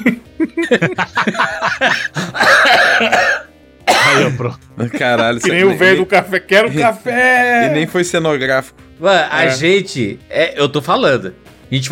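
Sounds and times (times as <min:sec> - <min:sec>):
speech: 0:00.0 - 0:01.9, 0:04.2 - 0:11.8
person laughing in short breathy bursts: 0:00.0 - 0:03.2, 0:04.2 - 0:06.0
harsh raspy cough: 0:01.3 - 0:05.6.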